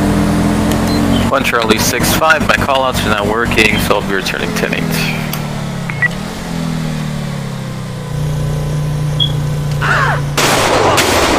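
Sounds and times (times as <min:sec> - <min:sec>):
low engine drone: 0:00.0 - 0:11.3
speech: 0:01.3 - 0:05.4
faint electronic tones: 0:05.9 - 0:06.2, 0:09.2 - 0:09.5
gunshots: 0:10.4 - 0:11.3.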